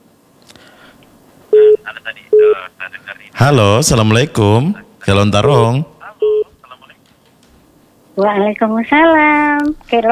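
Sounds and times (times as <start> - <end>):
incoming call tone on a regular telephone line: 1.6 - 2.6, 6.2 - 6.5
speech: 1.9 - 5.9, 8.2 - 10.0.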